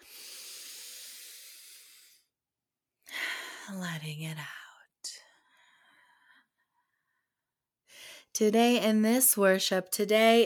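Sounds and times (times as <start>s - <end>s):
person inhaling deeply: 0.0s - 2.3s
speech: 3.7s - 4.6s, 8.4s - 10.4s.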